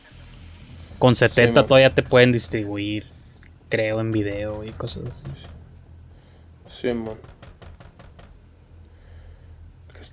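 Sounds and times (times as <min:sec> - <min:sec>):
low steady hum: 0:00.0 - 0:10.1
speech: 0:01.0 - 0:05.6, 0:06.8 - 0:07.4
knocks on a door: 0:04.1 - 0:05.6, 0:07.0 - 0:08.4.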